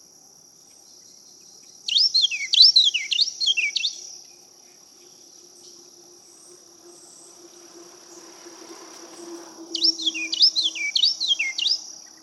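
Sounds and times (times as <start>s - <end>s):
steady high insect drone: 0.0s - 12.2s
Carolina wren song: 0.5s - 12.2s.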